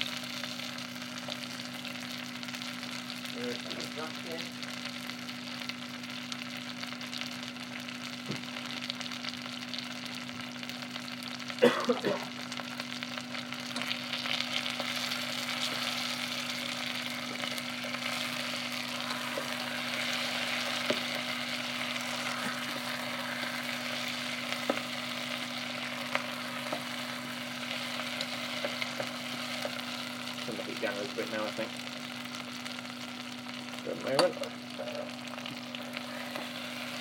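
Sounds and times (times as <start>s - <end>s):
faint constant hum: 0.0s - 36.9s
onions sizzling in butter in a hot pan: 0.0s - 36.9s
stirring scrapes in a pan: 14.9s - 29.8s, 35.8s - 36.9s.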